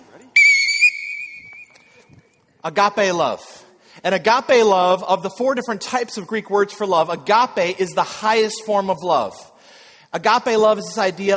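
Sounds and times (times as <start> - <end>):
whistle blast as a start signal: 0.4 - 2.0
speech: 2.6 - 9.5, 10.1 - 11.3.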